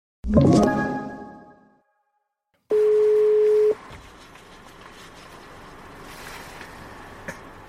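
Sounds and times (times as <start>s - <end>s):
bright harmonic tone: 0.3s - 1.8s
telephone ringing tone on an outgoing call: 2.7s - 3.8s.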